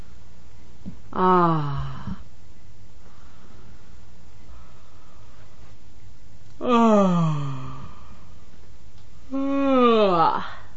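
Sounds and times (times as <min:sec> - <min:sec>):
speech: 0:01.2 - 0:02.2
woman stifling yawns: 0:06.6 - 0:08.0, 0:09.3 - 0:10.7.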